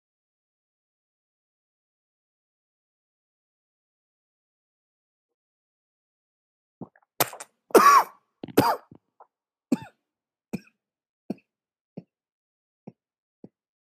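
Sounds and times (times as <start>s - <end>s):
person coughing hard: 7.8s - 8.9s.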